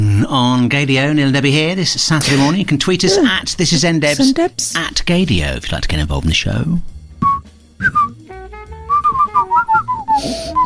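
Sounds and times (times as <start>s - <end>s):
speech: 0.2s - 7.0s, 7.8s - 8.1s, 10.2s - 10.4s
person whistling a quick lively tune: 7.2s - 10.6s
brief breathy burst: 10.1s - 10.6s.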